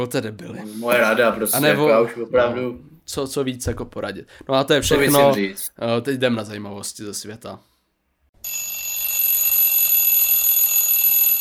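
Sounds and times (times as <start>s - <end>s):
speech: 0.0s - 7.7s
alarm clock ringing: 8.4s - 11.3s.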